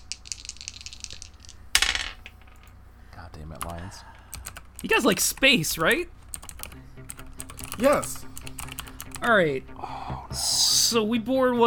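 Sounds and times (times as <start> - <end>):
dice clattering and rattling: 0.0 - 2.8
speech: 3.3 - 4.2, 4.8 - 6.2, 7.8 - 8.3, 9.2 - 11.6.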